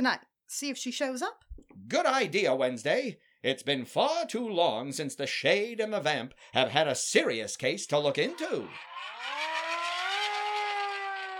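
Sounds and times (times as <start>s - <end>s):
speech: 0.0s - 9.8s
police siren wailing as police cars pull up outside: 8.6s - 11.3s.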